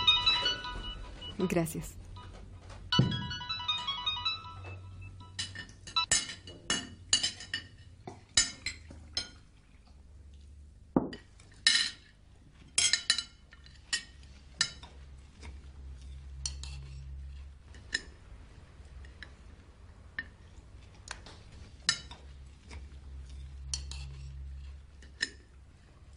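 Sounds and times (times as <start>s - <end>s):
mobile phone ringing with a bright melodic tone: 0.0s - 1.5s, 2.9s - 6.1s
speech: 1.4s - 2.0s
dishes and cutlery clinking at a meal: 4.6s - 9.5s, 11.0s - 18.2s, 21.3s - 25.5s.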